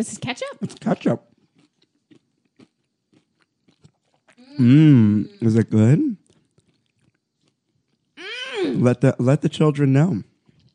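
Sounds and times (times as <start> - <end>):
speech: 0.0 - 1.3, 4.6 - 6.2, 8.6 - 10.3
loud crunchy chewing of grilled cheese: 0.0 - 8.2.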